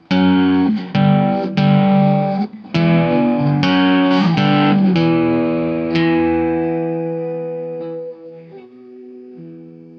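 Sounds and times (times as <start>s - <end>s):
Halloween guitar playing: 0.0s - 9.9s.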